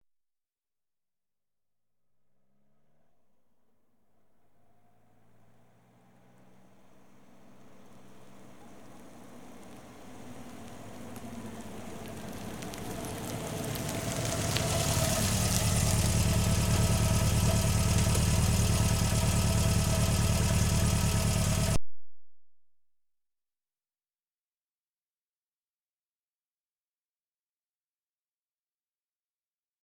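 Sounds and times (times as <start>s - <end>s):
Ford Fiesta car approaching: 3.9s - 21.8s.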